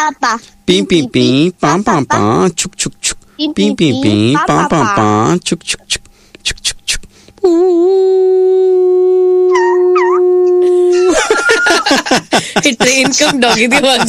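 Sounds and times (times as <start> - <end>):
speech: 0.1 - 14.0
dog on a train howling: 9.4 - 10.7
dog on a train yelping: 9.5 - 10.2
laughter: 10.9 - 14.0.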